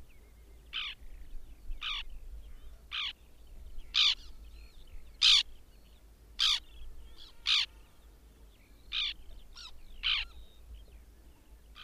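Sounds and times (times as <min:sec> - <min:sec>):
White-winged tern rasping call notes: 0:03.9 - 0:04.3, 0:05.2 - 0:05.4, 0:06.4 - 0:07.8, 0:08.9 - 0:10.4.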